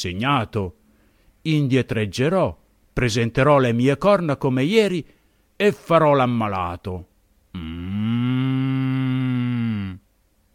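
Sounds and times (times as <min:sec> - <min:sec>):
speech: 0:00.0 - 0:00.8, 0:01.4 - 0:07.9
ox mooing: 0:07.6 - 0:10.0.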